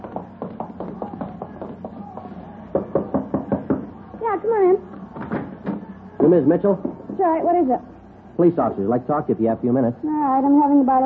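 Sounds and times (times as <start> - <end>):
knocking on a door: 0.0 - 3.9, 5.2 - 7.3
speech: 6.2 - 11.0.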